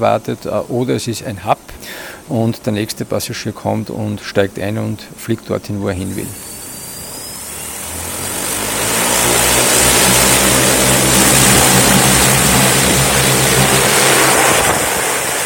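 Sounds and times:
speech: 0.0s - 6.5s
passenger drone rotors whirring on lift-off: 6.0s - 15.4s.

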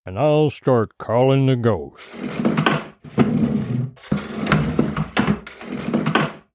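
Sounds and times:
speech: 0.0s - 4.2s
chairs dragged across a wooden floor into a circle: 2.0s - 6.5s.

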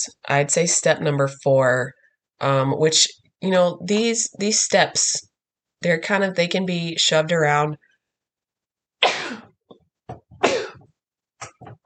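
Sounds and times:
speech: 0.0s - 7.9s, 9.0s - 9.4s
loud explosive sneezes: 9.0s - 9.5s, 10.4s - 10.8s.

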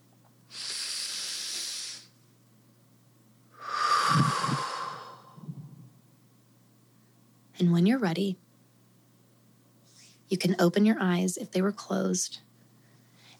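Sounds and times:
deep breath in and out: 0.5s - 2.2s, 3.6s - 5.9s
speech: 7.6s - 8.4s, 10.3s - 12.5s.

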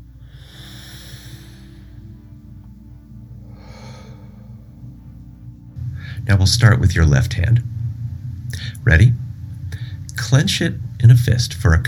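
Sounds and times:
deep breathing during a guided meditation and relaxation exercise: 0.0s - 6.4s, 7.6s - 10.2s
low hum: 0.0s - 11.8s
speech: 6.2s - 7.7s, 8.8s - 9.2s, 10.3s - 11.8s.

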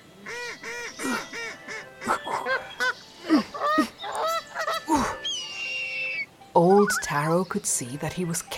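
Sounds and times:
big flock of ducks quacking and honking landing in a swamp: 0.2s - 8.0s
speech: 7.1s - 8.5s.

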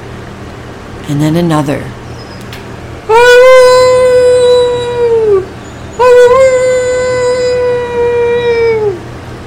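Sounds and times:
speech: 1.1s - 2.0s
wolves howling: 3.1s - 9.1s.

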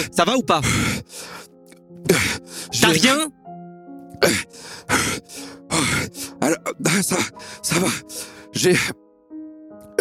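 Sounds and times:
speech: 0.0s - 1.4s, 2.2s - 3.5s, 4.2s - 9.0s
heavy out-of-breath panting: 0.6s - 2.8s, 4.3s - 8.9s.

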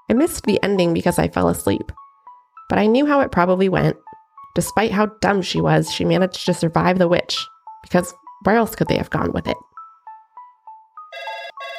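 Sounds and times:
speech: 0.1s - 2.0s, 2.7s - 9.7s
phone ringtone with electronic beeping melody: 11.0s - 11.7s.

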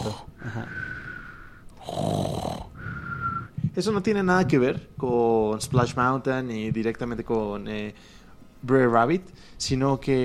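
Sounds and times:
speech: 0.1s - 0.8s, 3.8s - 10.2s
bear snoring on a log ride: 1.8s - 3.5s.

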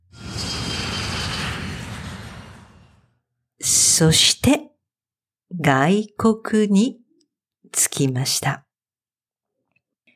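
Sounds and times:
airplane engine in flight: 0.0s - 3.0s
speech: 3.6s - 4.7s, 5.5s - 7.0s, 7.7s - 8.6s.

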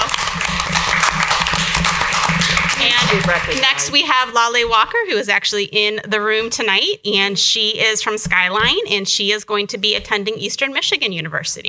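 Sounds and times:
audience applause: 0.0s - 4.0s
speech: 3.1s - 11.6s.

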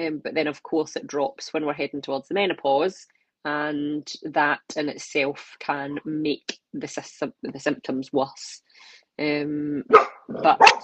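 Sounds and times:
speech: 0.0s - 10.8s
dog barking: 9.9s - 10.8s.

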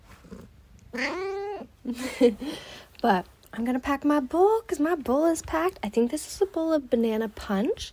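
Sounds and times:
cat meowing for breakfast: 0.9s - 1.7s
speech: 1.9s - 7.9s.

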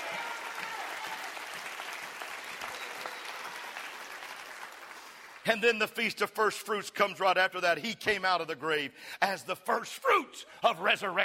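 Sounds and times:
audience clapping: 0.0s - 5.6s
speech: 5.5s - 11.2s.

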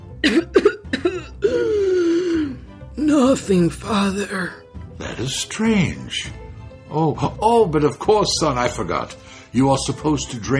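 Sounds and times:
acted coughing by a storyteller voicing a prince: 0.2s - 1.6s
speech: 3.3s - 4.6s, 5.2s - 10.5s.

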